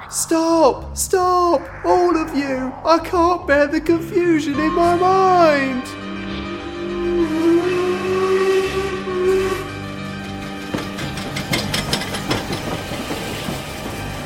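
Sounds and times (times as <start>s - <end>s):
droning tonal whine of a train pulling in at a platform: 0.0s - 10.5s
speech: 0.1s - 6.0s
train rumbling with rhythmic clanks: 9.8s - 14.2s.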